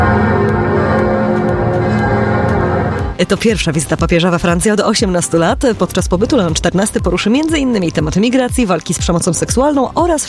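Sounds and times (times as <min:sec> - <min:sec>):
church bells ringing across Paris, France, welcoming the Pope: 0:00.0 - 0:03.0
speech: 0:03.2 - 0:10.2.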